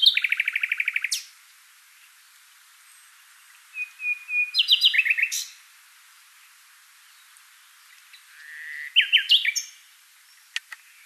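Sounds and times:
common nightingale Luscinia megarhynchos song: 0.0 - 10.9.

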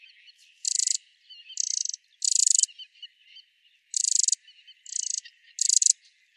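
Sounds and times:
Eurasian wren Troglodytes troglodytes churr calls: 0.0 - 2.9, 3.9 - 6.3
soft bird chirps: 0.0 - 6.3.

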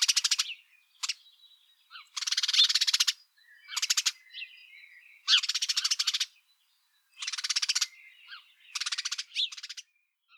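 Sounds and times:
house sparrow Passer domesticus giving rattling chirps: 0.0 - 10.3.

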